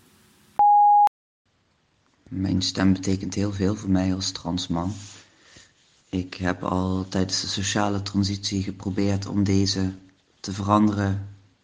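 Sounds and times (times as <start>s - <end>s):
voicemail answering machine tone: 0.6s - 1.1s
speech: 2.3s - 5.2s, 6.1s - 11.3s.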